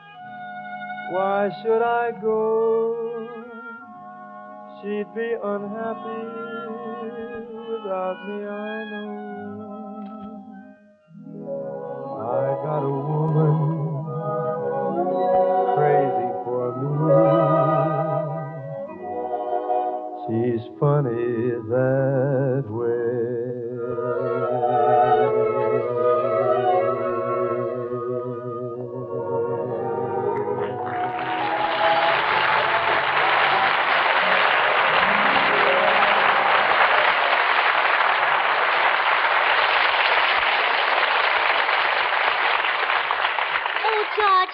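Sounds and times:
sung melody: 0.0s - 37.4s
speech: 1.1s - 3.6s, 4.8s - 9.7s, 12.3s - 13.8s
large crowd applause: 30.6s - 44.5s.

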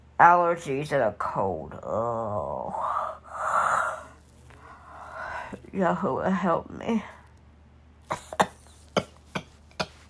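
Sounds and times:
speech: 0.2s - 3.0s, 5.7s - 7.2s
short sharp coughs: 8.1s - 10.0s.

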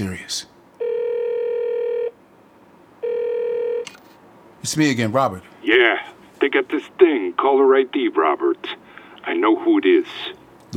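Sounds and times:
speech: 0.0s - 0.5s, 4.6s - 10.7s
telephone line tone over a speakerphone: 0.8s - 2.2s, 3.0s - 4.0s.

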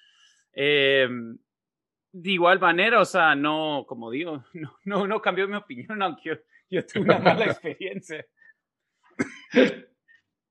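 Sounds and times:
speech: 0.6s - 1.3s, 2.1s - 8.4s, 9.2s - 9.9s
laughter: 6.8s - 8.2s
harsh coughs in a coughing fit: 9.2s - 10.0s.

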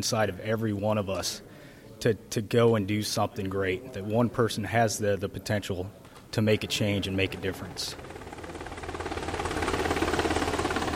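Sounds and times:
speech: 0.0s - 8.1s
Black Hawk helicopter rotor blades beating: 6.5s - 10.9s.

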